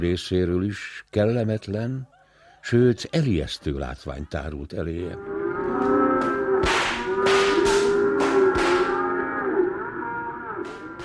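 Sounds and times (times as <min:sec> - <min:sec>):
speech: 0:00.0 - 0:05.4
cattle lowing: 0:05.2 - 0:11.0
whips cracking while herding cattle: 0:06.6 - 0:08.0.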